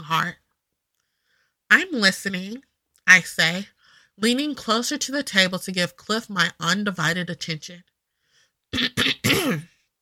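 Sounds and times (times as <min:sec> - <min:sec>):
speech: 0:00.1 - 0:00.4, 0:01.7 - 0:07.9, 0:08.7 - 0:09.7
man clearing his throat: 0:08.8 - 0:09.8.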